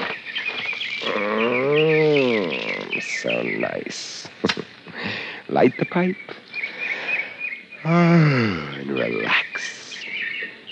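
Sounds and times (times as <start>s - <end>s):
birds chirping outdoors at twilight: 0.0s - 10.7s
speech: 5.5s - 6.4s, 7.9s - 9.8s.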